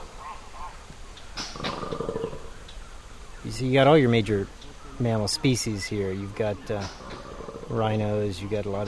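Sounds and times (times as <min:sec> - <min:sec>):
faint bird chirps: 0:00.0 - 0:08.8
outdoor ambience in the Chinko wilderness: 0:00.0 - 0:08.8
hippos grunting in the Chinko wilderness: 0:01.5 - 0:02.6, 0:06.6 - 0:08.3
speech: 0:03.6 - 0:07.0, 0:07.7 - 0:08.8.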